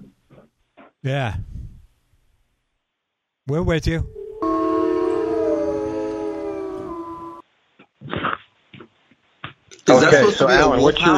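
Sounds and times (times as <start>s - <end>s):
speech: 1.0s - 1.5s, 3.5s - 4.2s, 10.0s - 11.1s
human voice imitating a wolf howl: 4.1s - 7.4s.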